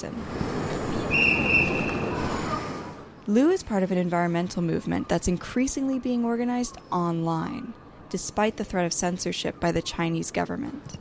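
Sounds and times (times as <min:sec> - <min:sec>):
speech: 0:00.0 - 0:00.4, 0:03.3 - 0:10.9
train rumbling at a busy railway station: 0:00.0 - 0:03.1
high thin train wheel squeal: 0:00.5 - 0:03.0.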